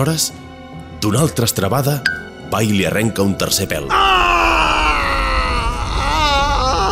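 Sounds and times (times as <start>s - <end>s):
speech: 0.0s - 4.3s
enraged demonic scream on waking: 3.9s - 6.9s.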